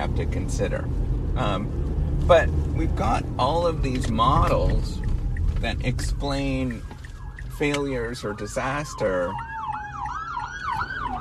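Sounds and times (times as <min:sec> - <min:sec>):
road traffic rumble: 0:00.0 - 0:11.2
speech: 0:00.2 - 0:06.9, 0:07.6 - 0:09.5
ambulance siren wailing: 0:03.4 - 0:11.2.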